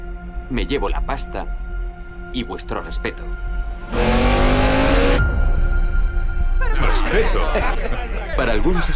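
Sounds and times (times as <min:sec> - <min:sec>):
speech: 0:00.5 - 0:01.7, 0:02.3 - 0:04.3, 0:07.1 - 0:08.9
car engine revving hard and accelerating away at a green light: 0:03.9 - 0:05.3
laughter: 0:06.6 - 0:08.9.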